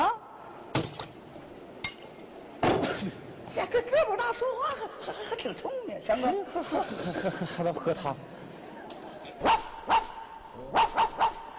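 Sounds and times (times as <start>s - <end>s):
speech: 3.0s - 8.4s
dog barking: 9.4s - 11.5s.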